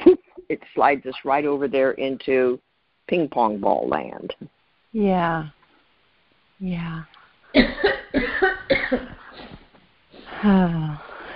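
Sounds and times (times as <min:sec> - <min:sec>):
speech: 0:00.5 - 0:05.6, 0:06.6 - 0:09.2, 0:10.4 - 0:11.3
person coughing: 0:07.6 - 0:10.4.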